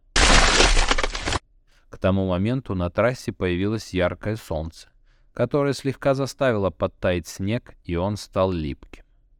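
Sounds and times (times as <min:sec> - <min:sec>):
ice ball support cracking and shattering on a monster truck course: 0:00.0 - 0:01.4
speech: 0:02.0 - 0:09.0.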